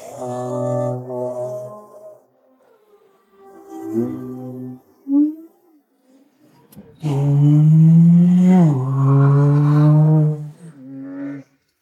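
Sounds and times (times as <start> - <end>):
Porsche sports car accelerating hard with Sport Chrono launch control: 7.1 - 11.6.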